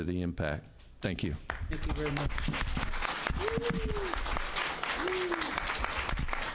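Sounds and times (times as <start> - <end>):
speech: 0.0 - 4.3
audience applause: 1.8 - 6.5.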